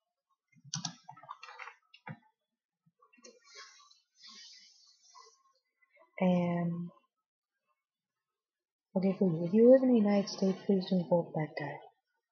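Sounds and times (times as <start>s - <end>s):
quiet typing on a computer keyboard: 0.7s - 2.2s
faint breathy sounds: 3.4s - 5.4s
speech: 6.2s - 7.0s, 9.0s - 11.9s.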